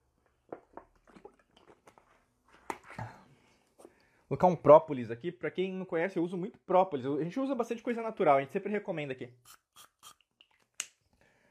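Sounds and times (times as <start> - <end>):
person sipping and swallowing water: 0.3 - 2.0
speech: 4.3 - 9.9.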